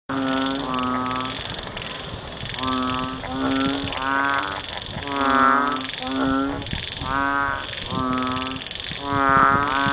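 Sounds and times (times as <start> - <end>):
banded bullfrog croaking: 0.1 - 9.9
constant high hum: 0.1 - 9.9.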